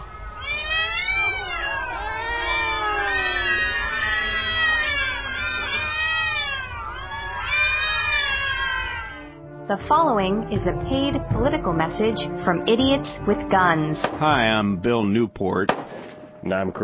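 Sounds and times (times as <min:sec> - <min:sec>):
chorus of feral cats yowling and screeching: 0:00.0 - 0:09.4
speech: 0:09.7 - 0:15.8, 0:16.4 - 0:16.8.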